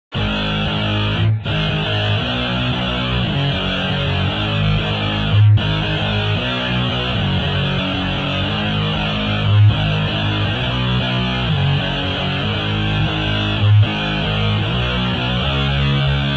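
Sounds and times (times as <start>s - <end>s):
electric guitar shifting: 0.1s - 16.3s.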